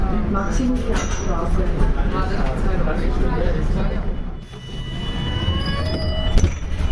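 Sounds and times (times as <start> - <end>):
indistinct voices murmuring: 0.0 - 4.4
subway train rumbling through an underground station: 0.0 - 6.8
high metallic subway train wheel squeals: 4.4 - 6.8.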